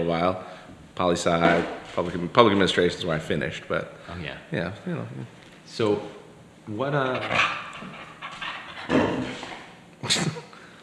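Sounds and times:
speech: 0.1 - 8.0
dog panting and breathing: 7.1 - 9.8.

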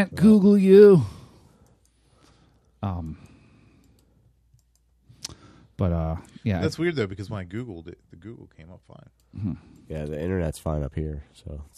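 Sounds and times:
speech: 0.0 - 1.2, 2.8 - 3.2, 5.8 - 11.7
computer mouse click to reload a web page: 3.0 - 5.4.

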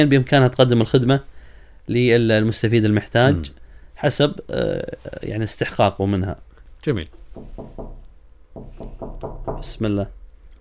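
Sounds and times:
speech: 0.0 - 1.3, 1.9 - 8.0, 8.6 - 10.2
firm knocks on a wooden door: 7.1 - 8.0, 8.6 - 9.8.

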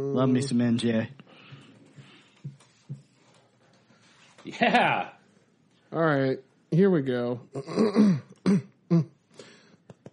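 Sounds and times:
speech: 0.0 - 1.2, 4.4 - 5.2, 5.9 - 9.5
man clearing throat: 7.6 - 9.2.

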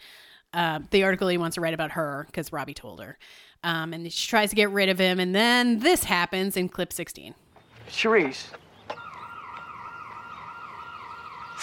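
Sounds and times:
speech: 0.5 - 9.0
electronic alarm wailing: 8.9 - 11.6.

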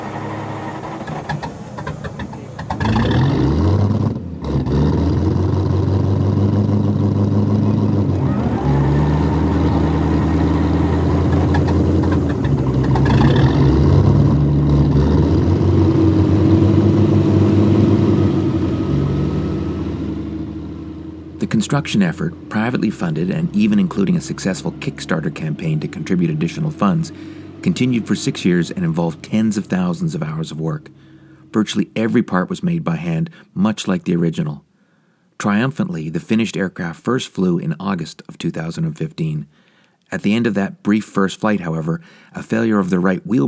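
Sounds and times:
modern motorcycle engines powering an aircraft droning: 0.0 - 33.4
speech: 21.7 - 34.7, 35.4 - 43.4.

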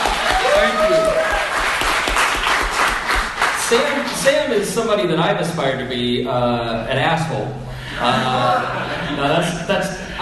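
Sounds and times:
people cheering and whooping: 0.0 - 1.9, 8.1 - 9.0
crowd applause: 0.0 - 4.2
speech: 3.7 - 10.2
laughter: 7.9 - 9.6.

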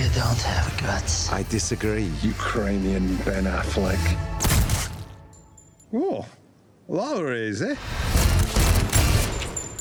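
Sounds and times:
speech: 0.2 - 4.4, 5.9 - 8.6
rapid gunfire from a film trailer: 8.1 - 9.6.

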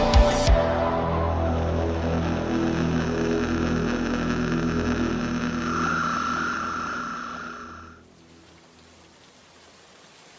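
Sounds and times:
low drone of evening street traffic in London: 0.9 - 8.1
rain pattering on window panes and slate roofs: 8.0 - 10.3.

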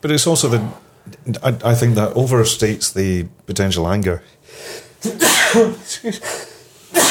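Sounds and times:
speech: 0.0 - 6.5
person sneezing: 5.0 - 7.0.

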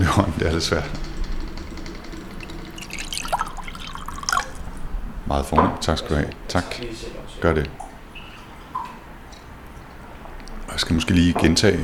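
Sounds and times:
soft water drips: 0.0 - 11.6
low room hum: 0.0 - 11.8
speech: 0.1 - 1.0, 5.3 - 7.9, 10.8 - 11.8
water pouring into a glass: 1.7 - 4.9.

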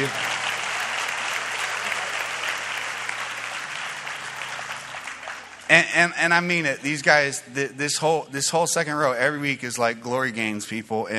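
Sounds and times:
speech: 0.0 - 0.2, 5.7 - 11.1
audience applause: 0.0 - 6.6.

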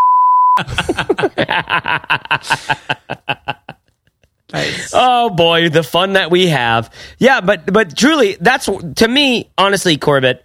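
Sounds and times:
censor bleep tone: 0.0 - 0.6
speech: 0.6 - 3.4, 4.6 - 10.4
laughter: 0.6 - 4.8.

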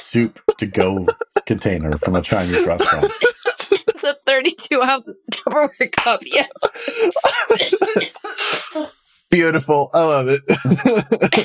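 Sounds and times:
laughter: 0.0 - 11.4
speech: 0.1 - 3.3, 4.0 - 11.4
harsh throaty coughing fit: 0.6 - 4.0, 6.6 - 8.8, 10.4 - 11.4.

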